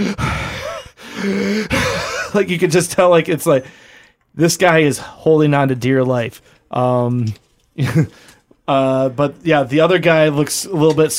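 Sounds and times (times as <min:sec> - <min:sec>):
voice imitating labored breathing: 0:00.0 - 0:02.3, 0:03.6 - 0:04.3
speech: 0:01.2 - 0:11.1.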